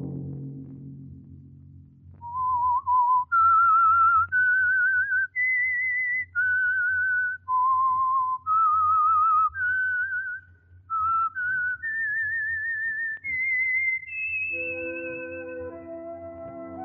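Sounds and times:
whistled theme melody with sliding notes: 2.2s - 16.8s
orchestral chord: 14.6s - 16.8s.

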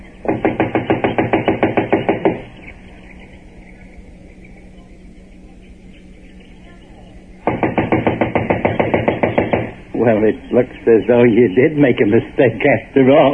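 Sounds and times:
low hum: 0.0s - 13.3s
knocking on the wooden door of a run-down unoccupied house: 0.3s - 2.5s, 7.4s - 9.8s
speech: 10.1s - 13.3s.

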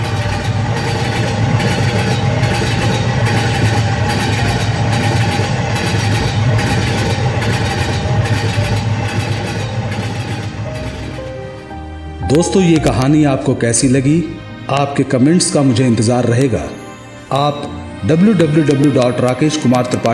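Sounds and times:
train rumbling as it pulls away from a station: 0.0s - 12.2s
speech: 12.3s - 20.1s.

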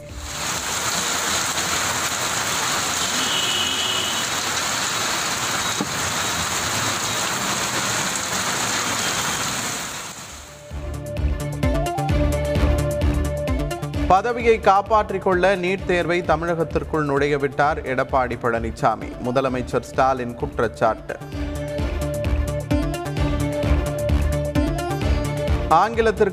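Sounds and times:
music: 0.0s - 1.6s, 10.5s - 26.3s
steady dense rain pouring: 0.0s - 10.7s
speech: 14.1s - 21.4s, 25.7s - 26.3s.

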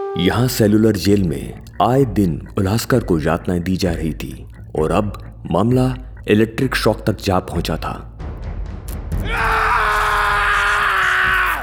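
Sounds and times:
speech: 0.2s - 8.1s
low rumble: 0.5s - 9.0s
man screaming in pain: 9.3s - 11.6s.

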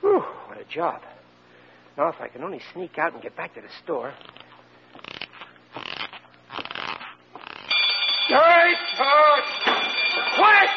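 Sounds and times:
speech: 0.7s - 1.1s, 2.0s - 4.4s, 10.4s - 10.7s
burglar alarm bell ringing: 7.7s - 10.7s.

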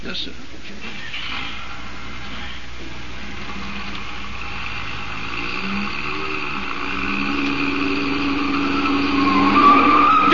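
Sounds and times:
speech: 0.1s - 3.6s
car engine noise: 0.9s - 10.3s
car tires squealing through a sharp turn: 6.8s - 10.3s.

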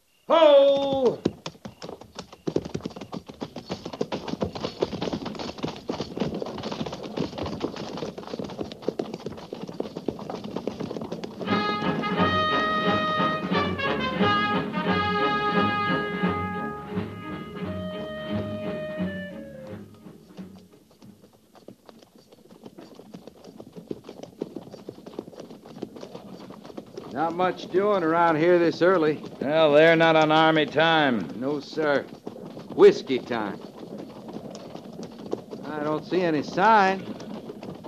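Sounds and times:
cavalry horses' hooves clip-clopping at a walk: 0.2s - 37.8s
speech: 0.3s - 1.2s, 27.3s - 32.2s, 32.8s - 33.7s, 36.0s - 37.1s.

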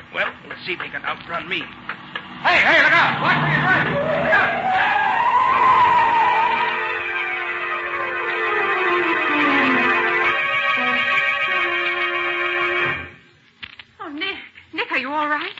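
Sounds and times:
car engine rumble: 0.0s - 8.9s
car tires screeching in a hard skid on a street: 0.0s - 13.2s
speech: 0.2s - 4.5s.

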